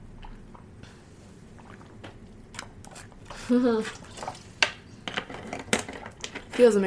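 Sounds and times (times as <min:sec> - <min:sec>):
sipping and swallowing water from a glass: 0:00.0 - 0:04.6
speech: 0:03.5 - 0:04.0, 0:06.6 - 0:06.8.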